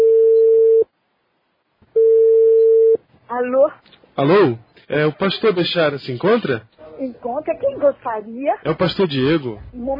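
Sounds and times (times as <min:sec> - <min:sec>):
ringing tone of an outgoing telephone call: 0:00.0 - 0:00.8, 0:02.0 - 0:03.0
speech: 0:03.4 - 0:09.9.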